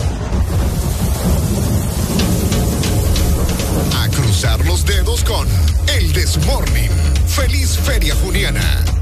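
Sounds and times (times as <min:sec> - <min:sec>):
heavy rain pouring down in a thunderstorm: 0:00.2 - 0:07.4
deep continuous rumble of thunder: 0:00.3 - 0:07.1
speech: 0:06.3 - 0:08.9.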